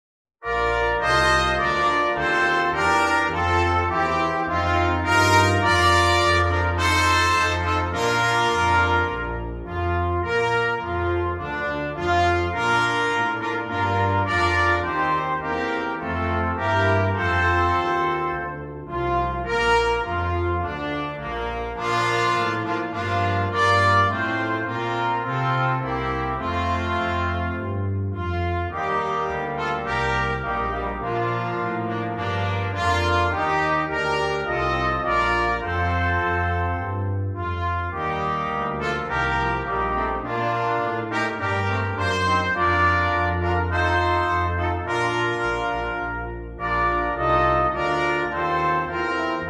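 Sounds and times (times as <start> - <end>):
brass quintet playing an anthem: 0.4 - 49.4.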